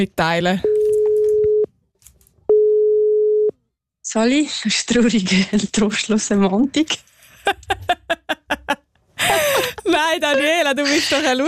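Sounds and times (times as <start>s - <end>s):
speech: 0.0s - 0.7s, 4.1s - 8.8s, 9.9s - 11.4s
telephone call tone beeps on an outgoing call: 0.6s - 1.7s, 2.5s - 3.6s
laughter: 7.4s - 11.4s.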